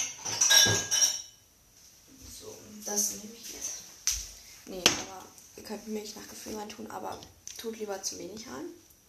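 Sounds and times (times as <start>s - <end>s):
shake glass clinking as it is picked up and set down on a hard surface: 0.0s - 1.4s
speech: 0.6s - 0.9s, 2.9s - 3.7s, 5.7s - 8.8s.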